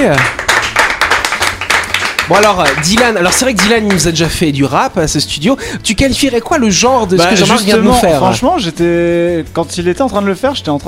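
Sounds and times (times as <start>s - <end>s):
speech: 0.0s - 0.4s, 2.3s - 10.8s
small group applauding in a studio after a rap performance: 0.0s - 4.4s
voice sounds: 7.2s - 8.5s.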